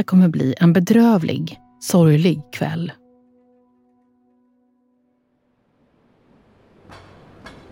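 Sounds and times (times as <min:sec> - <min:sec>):
speech: 0:00.0 - 0:03.0
tram rolling past on the street: 0:05.6 - 0:07.7.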